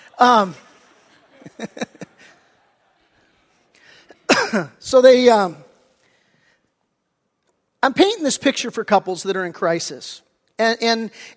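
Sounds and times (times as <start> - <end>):
laughter: 0.0 - 4.2
speech: 0.2 - 0.6, 1.5 - 2.0, 4.5 - 5.6, 7.8 - 11.3
person coughing after choking on a cough drop: 4.2 - 4.8
harsh throat-clearing coughs: 4.3 - 4.8.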